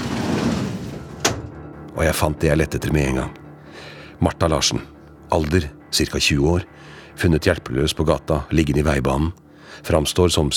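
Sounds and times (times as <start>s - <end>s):
metal filing cabinet drawer sliding open with gritty rumble and clunk: 0.0s - 1.6s
speech: 2.0s - 10.5s.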